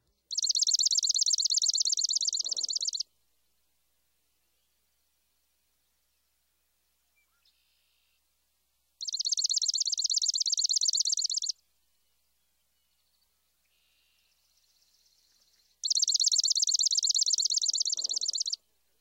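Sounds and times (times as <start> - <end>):
swamp sparrow singing a rapid reedy trill of chips: 0.3 - 3.1, 9.0 - 11.6, 13.6 - 18.6.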